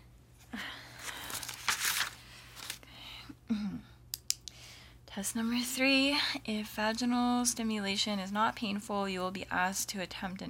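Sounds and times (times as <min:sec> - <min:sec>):
paper crinkling being handled: 0:01.0 - 0:02.8
speech: 0:05.2 - 0:10.4.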